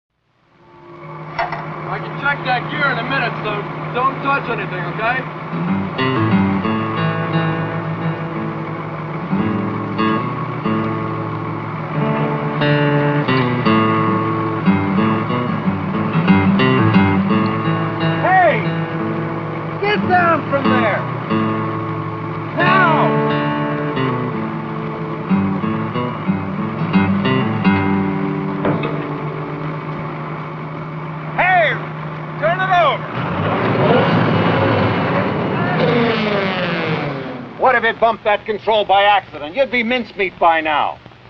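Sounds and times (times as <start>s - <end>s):
loud steady engine droning: 0.2s - 41.2s
brief voice-like sounds: 1.4s - 5.4s, 19.7s - 21.2s, 22.5s - 23.3s, 34.9s - 36.7s, 37.4s - 41.2s
speech: 2.2s - 6.3s, 38.0s - 41.2s.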